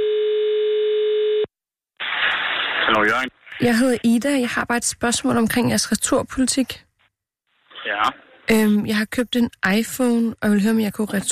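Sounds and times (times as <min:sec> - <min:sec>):
telephone call tone while phoning shops: 0:00.0 - 0:01.5
speech: 0:03.0 - 0:06.9, 0:08.0 - 0:11.2.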